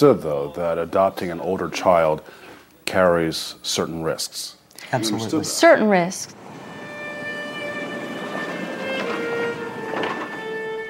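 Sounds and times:
speech: 0.0 - 6.4
faint high metallic whines: 6.3 - 10.8
train rolling along the rails: 6.3 - 10.8.

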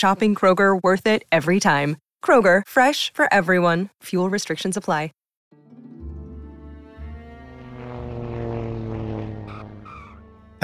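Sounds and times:
speech: 0.0 - 5.2
small propeller plane landing at the airport in Yakima, Washington: 6.9 - 10.6.

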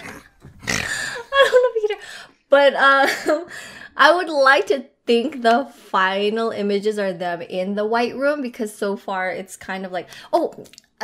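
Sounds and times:
dog snoring: 0.0 - 0.9
speech: 2.6 - 11.0.

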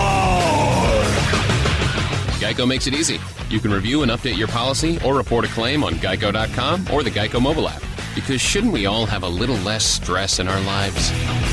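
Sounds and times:
man yelling and screaming in heavy-metal style: 0.0 - 1.3
speech: 2.5 - 11.5.

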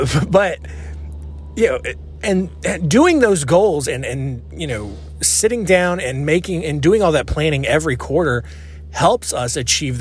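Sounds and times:
speech: 0.0 - 0.8, 1.6 - 10.0
low steady engine rumble of a nearby truck: 0.0 - 10.0
soft broadband road noise: 0.0 - 10.0.

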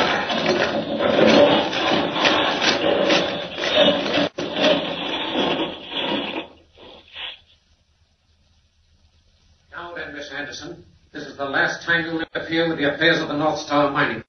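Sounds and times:
vehicle boring straight through solid rock toward mine galleries: 0.0 - 6.9
speech: 11.9 - 14.2.

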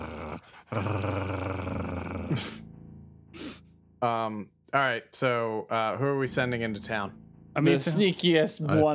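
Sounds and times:
person's voice imitating tiny dogs growling: 0.0 - 2.7
speech: 0.6 - 2.7, 4.0 - 8.9.

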